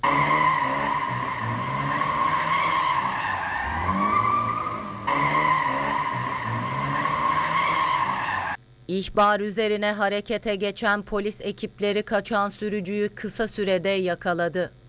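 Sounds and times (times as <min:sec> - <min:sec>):
drifting car engine rumble: 0:00.0 - 0:08.6
drifting car tires squealing: 0:00.0 - 0:08.6
speech: 0:09.0 - 0:14.8.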